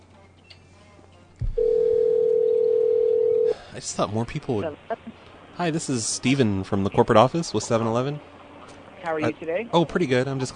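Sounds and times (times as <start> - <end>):
short thump: 1.4 - 1.6
telephone dial tone before a call is placed: 1.6 - 3.6
speech: 3.8 - 8.3, 9.0 - 10.5.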